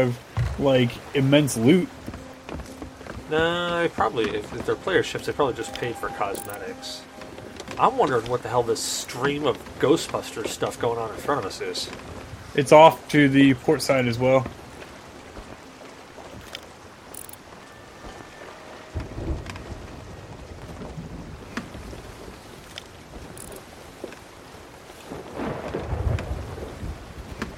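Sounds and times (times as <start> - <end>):
speech: 0.0 - 2.0, 3.3 - 7.1, 7.8 - 14.6
steady rain: 0.0 - 27.5
low thunder rumbles: 18.9 - 23.3, 25.1 - 27.5.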